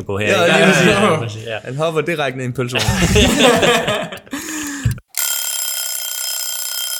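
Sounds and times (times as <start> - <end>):
speech: 0.0 - 4.2
laughter: 2.8 - 4.6
loud bright metallic bell ringing: 5.1 - 6.9.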